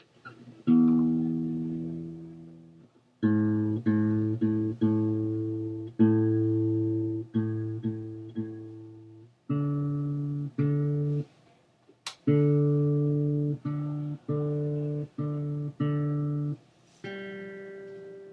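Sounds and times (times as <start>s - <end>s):
guitar being tuned: 0.0s - 11.4s, 12.0s - 18.3s.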